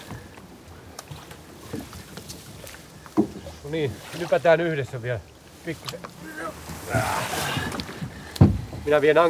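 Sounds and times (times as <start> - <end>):
steady wind: 0.0 - 9.2
water lapping: 0.0 - 9.2
speech: 3.2 - 7.7, 8.8 - 9.2
rowed motorboat hull scraping and knocking as dragged onto the shore: 5.6 - 9.2.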